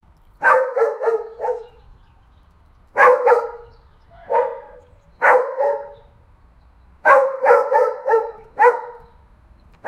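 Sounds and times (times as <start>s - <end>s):
dog barking loudly: 0.4s - 1.8s, 3.0s - 6.1s, 7.0s - 9.1s.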